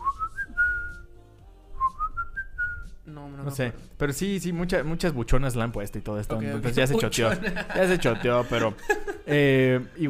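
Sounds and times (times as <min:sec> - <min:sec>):
person whistling a short melodic tune from a song: 0:00.0 - 0:01.1, 0:01.8 - 0:03.0
speech: 0:03.4 - 0:10.0
laughter: 0:06.6 - 0:10.0.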